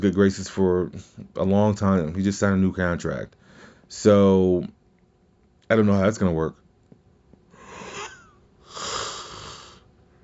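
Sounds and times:
speech: 0.0 - 4.8, 5.7 - 6.6
long yawn with breathy gasp and whining vocal glide: 7.6 - 9.8.

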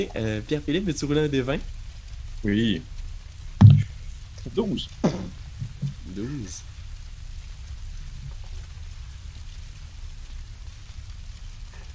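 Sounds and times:
speech: 0.0 - 1.8, 2.4 - 2.9, 4.4 - 5.4, 6.1 - 6.7
steady rain falling: 0.0 - 11.9.

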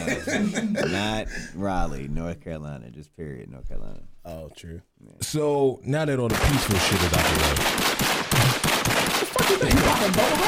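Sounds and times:
laughter: 0.0 - 1.6, 9.2 - 10.4
speech: 0.2 - 8.6, 9.5 - 10.4
thin feeble gunshot sound effect: 6.3 - 10.4.

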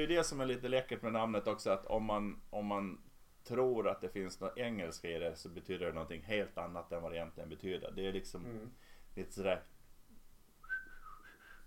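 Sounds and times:
speech: 0.0 - 9.7
person whistling a short tune: 10.6 - 11.6.

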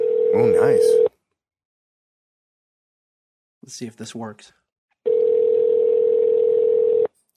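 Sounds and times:
outgoing phone call electronic ringing tone: 0.0 - 1.1, 5.1 - 7.1
speech: 0.4 - 1.1, 3.7 - 4.6.

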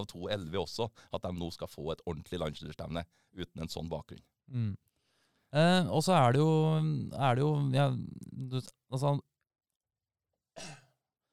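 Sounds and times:
speech: 0.0 - 4.9, 5.5 - 9.3, 10.6 - 10.8
sharp cough: 10.6 - 11.0.

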